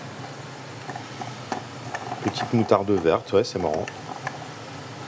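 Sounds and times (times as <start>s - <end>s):
small silicone spatula scraping and tapping inside a blender jar: 0.9s - 4.5s
speech: 2.3s - 4.0s.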